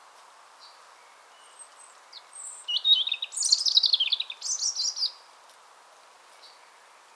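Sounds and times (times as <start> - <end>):
European robin Erithacus rubecula singing whistles and trills: 1.3 - 5.2.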